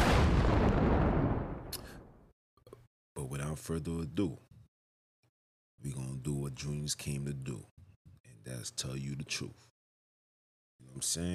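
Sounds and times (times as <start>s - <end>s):
booming gunshot sound effect with low rumble: 0.0s - 2.2s
speech: 3.3s - 4.5s, 5.8s - 7.8s, 8.4s - 9.7s, 10.8s - 11.3s.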